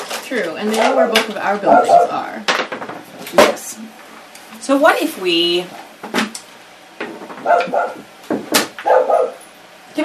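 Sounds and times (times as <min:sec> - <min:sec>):
speech: 0:00.3 - 0:02.6, 0:03.3 - 0:04.0, 0:04.6 - 0:06.3, 0:07.4 - 0:08.1
large dog barking: 0:01.0 - 0:02.2, 0:07.4 - 0:08.1, 0:08.8 - 0:09.4.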